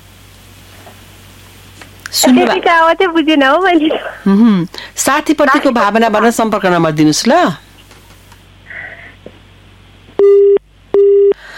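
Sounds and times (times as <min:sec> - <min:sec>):
speech: 0:02.1 - 0:07.6
telephone busy tone after a call is cut off: 0:10.2 - 0:11.4.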